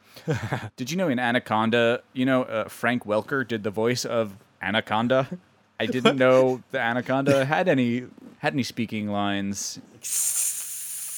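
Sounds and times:
speech: 0:00.2 - 0:10.5
voice imitating a hissing snake: 0:10.0 - 0:11.1.

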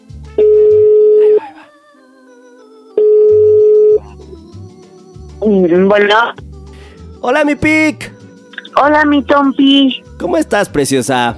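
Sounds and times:
telephone ringback tones as a call is placed: 0:00.4 - 0:01.4, 0:03.0 - 0:04.0
speech: 0:05.7 - 0:06.4, 0:07.2 - 0:08.2, 0:08.8 - 0:11.3.

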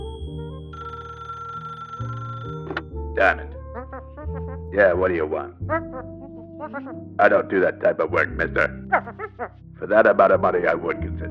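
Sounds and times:
telephone bell ringing: 0:00.0 - 0:02.9
speech: 0:03.2 - 0:03.5, 0:04.8 - 0:06.1, 0:06.7 - 0:11.2.

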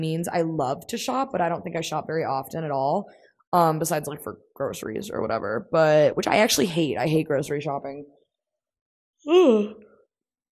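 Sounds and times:
speech: 0:00.0 - 0:08.2, 0:09.2 - 0:09.9
person yawning: 0:09.2 - 0:09.9.

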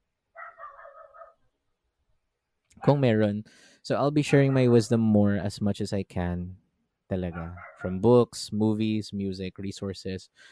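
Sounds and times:
newly adopted dog giving a drawn-out cry: 0:00.4 - 0:01.4, 0:04.3 - 0:04.7, 0:07.3 - 0:08.0
speech: 0:02.8 - 0:10.5.

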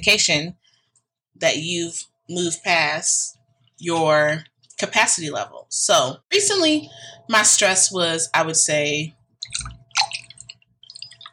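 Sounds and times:
speech: 0:00.0 - 0:00.6, 0:01.4 - 0:09.8
mimosa pouring into a glass: 0:09.4 - 0:11.3.

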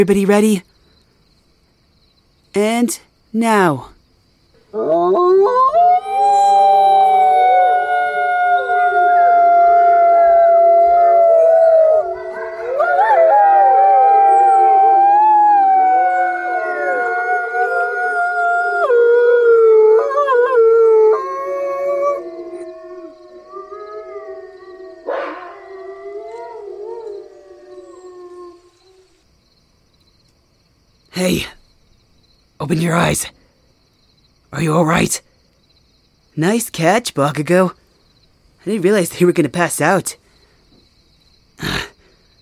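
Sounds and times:
speech: 0:00.0 - 0:00.7, 0:02.6 - 0:04.0, 0:04.7 - 0:06.0, 0:32.7 - 0:33.4, 0:34.5 - 0:35.3, 0:36.4 - 0:37.8, 0:38.6 - 0:40.2
chorus of people in a circle howling like wolves: 0:04.7 - 0:29.2.

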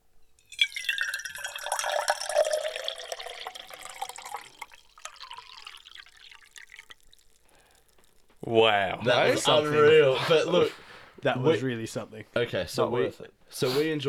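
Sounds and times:
liquid pouring back into a tin: 0:00.4 - 0:08.4
speech: 0:08.4 - 0:14.0.

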